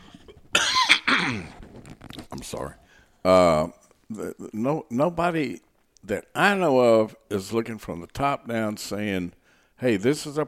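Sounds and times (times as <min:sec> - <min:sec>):
person coughing harshly: 0:00.6 - 0:01.6
speech: 0:02.5 - 0:10.4.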